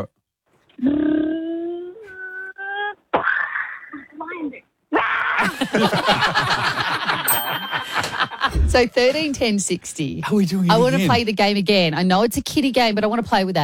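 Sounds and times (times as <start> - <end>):
speech: 0.8 - 1.2, 5.4 - 13.6
six-year-old child vocally imitating a lion in a car crash: 0.8 - 5.4
laughter: 5.4 - 8.6.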